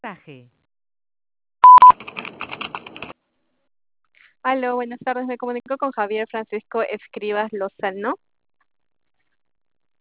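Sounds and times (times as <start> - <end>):
speech: 0.0 - 0.6, 4.4 - 8.2
loud telephone beeps before a call: 1.6 - 2.0.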